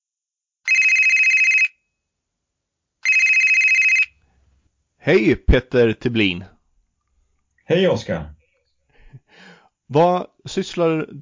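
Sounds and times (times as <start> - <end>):
outgoing phone call ringing tone: 0.7 - 1.8, 3.0 - 4.2
speech: 5.0 - 6.5, 7.7 - 8.4, 9.3 - 11.2.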